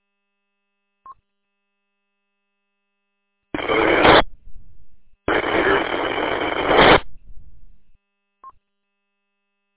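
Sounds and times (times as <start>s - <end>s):
weak radio transmission with heavy static bursts: 3.6s - 8.0s.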